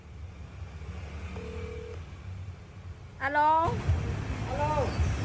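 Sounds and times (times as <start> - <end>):
electronic phone dialing tone: 1.3 - 2.0
speech: 3.2 - 5.1.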